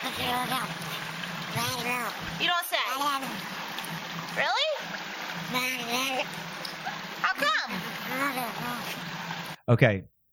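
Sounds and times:
speech: 0.0 - 6.6, 9.7 - 10.3
steady wash of splashing water: 0.0 - 9.6
sea otter squealing and chirping: 6.7 - 9.0.

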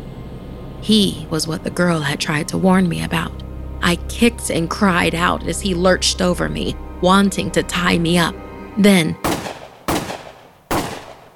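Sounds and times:
speech: 0.8 - 9.2
gunshots: 9.2 - 11.3.

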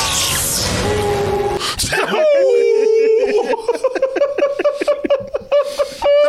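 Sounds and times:
man howling like a wolf while being shocked with electricity from a jumper cable: 0.9 - 3.6
man yelping: 1.9 - 3.6
laughter: 1.9 - 6.2.

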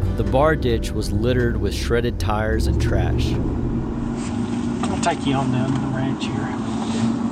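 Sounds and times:
pickup truck engine drone and road noise cruising down a highway: 0.0 - 6.0
speech: 0.2 - 4.3, 5.0 - 7.2.

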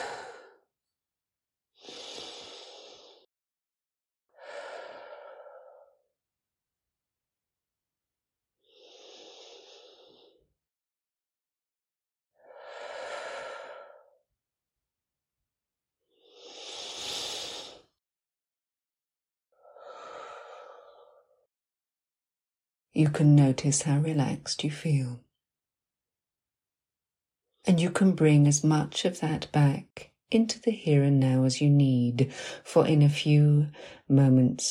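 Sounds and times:
slow deep breaths during a guided relaxation: 0.0 - 0.7, 1.8 - 3.3, 4.4 - 6.1, 8.6 - 10.4, 12.4 - 14.2, 16.2 - 17.9, 19.6 - 21.5
speech: 23.0 - 25.2, 27.7 - 34.7.

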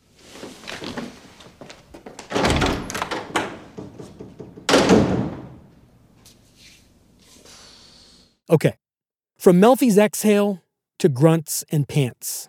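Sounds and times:
door slammed shut as a man storms out: 2.3 - 5.8
speech: 8.5 - 8.8, 9.4 - 12.4.

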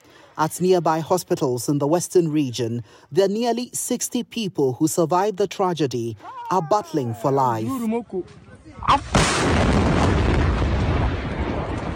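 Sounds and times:
speech: 0.4 - 9.9
massive explosion: 9.0 - 11.9.

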